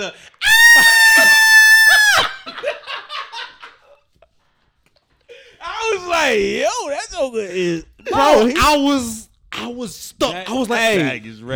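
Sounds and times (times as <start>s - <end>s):
speech: 0.0s - 1.5s, 6.2s - 11.5s
laughter: 0.0s - 4.0s
person screaming high-pitched: 0.4s - 2.3s, 8.1s - 9.7s.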